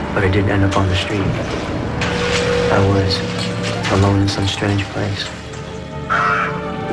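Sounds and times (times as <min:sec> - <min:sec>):
speech: 0:00.2 - 0:01.9, 0:02.7 - 0:05.4
big crow cawing: 0:06.0 - 0:06.8.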